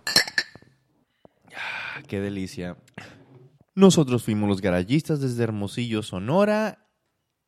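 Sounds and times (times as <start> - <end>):
glasses clinking in a toast: 0.0 - 0.8
speech: 2.0 - 3.0, 3.8 - 6.8.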